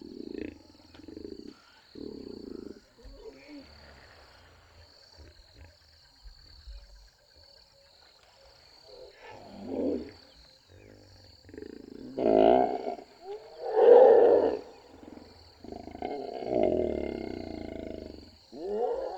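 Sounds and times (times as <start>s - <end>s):
large animal roaring and growling in the savanna: 11.5s - 19.1s.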